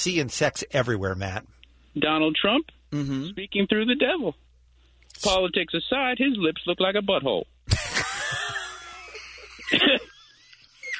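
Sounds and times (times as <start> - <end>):
speech: 0.0 - 4.4, 5.2 - 7.8
laughter: 7.7 - 10.9
person coughing: 9.7 - 10.1.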